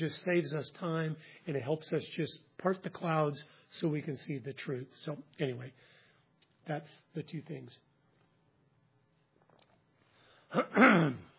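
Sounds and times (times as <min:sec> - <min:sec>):
speech: 0:00.0 - 0:05.9, 0:06.6 - 0:07.9, 0:10.5 - 0:11.3
presenter clearing throat at a talk: 0:10.5 - 0:11.3.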